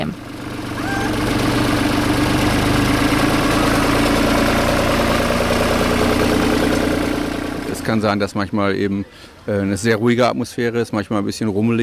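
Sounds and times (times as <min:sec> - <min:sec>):
tractor engine rumbling while driving past: 0:00.0 - 0:09.4
speech: 0:07.9 - 0:11.8.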